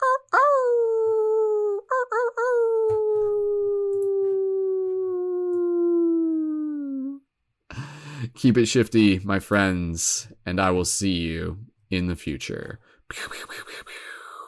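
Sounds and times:
person imitating a wolf howl at a full-moon gathering: 0.0s - 7.2s
speech: 8.4s - 13.7s.

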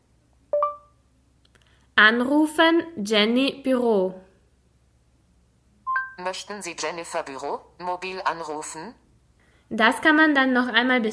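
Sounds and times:
phone voice-command prompt beep after middle hatched key press: 0.5s - 0.9s, 5.9s - 6.2s
speech: 2.0s - 4.2s, 6.2s - 9.0s, 9.7s - 11.1s.

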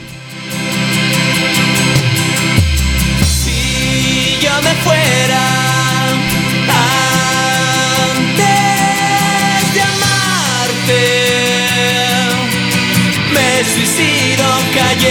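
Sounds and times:
dense guitars: 0.0s - 15.0s
rock band playing a cover song: 0.0s - 15.0s
regular drum beat: 2.0s - 5.8s
person singing: 3.2s - 15.0s.

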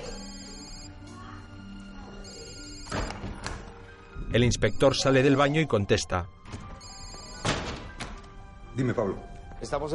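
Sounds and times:
mobile phone ringing with electronic ringtone: 0.0s - 1.0s, 2.2s - 3.2s, 6.8s - 7.6s
speech: 4.3s - 6.4s, 8.8s - 9.9s.

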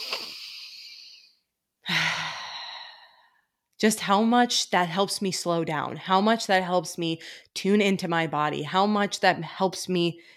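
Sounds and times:
deep breath during a calming breathing exercise: 0.0s - 3.6s
speech: 3.8s - 10.3s.

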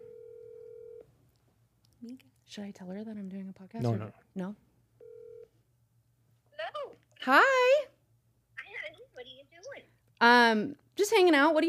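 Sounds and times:
phone call ringback tone on speakerphone: 0.0s - 1.0s, 5.0s - 5.4s
low hum: 0.0s - 11.6s
speech: 2.0s - 4.7s, 7.2s - 7.5s, 10.2s - 11.6s.

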